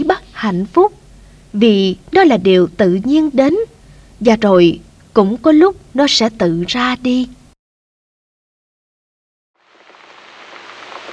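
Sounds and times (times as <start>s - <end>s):
steady rain hiss: 0.0s - 6.1s, 9.6s - 11.1s
speech: 0.4s - 3.6s, 4.2s - 7.4s
large heavy raindrops pattering on the ground: 9.6s - 11.1s.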